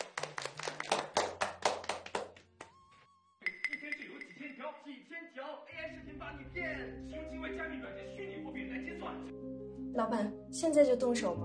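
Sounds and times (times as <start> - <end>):
short scattered applause of sharp hand claps: 0.0 - 2.8
speech: 5.0 - 11.4.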